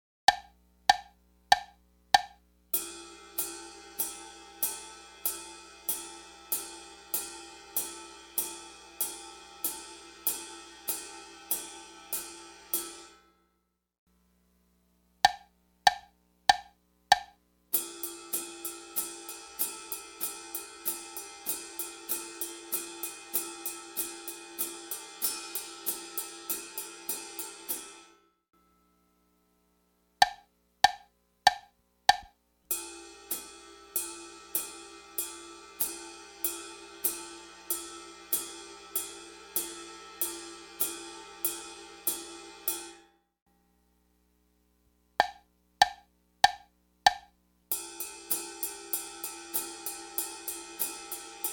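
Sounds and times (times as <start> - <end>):
drums: 0.3 - 13.3, 14.1 - 28.2, 30.2 - 43.1, 45.1 - 51.5.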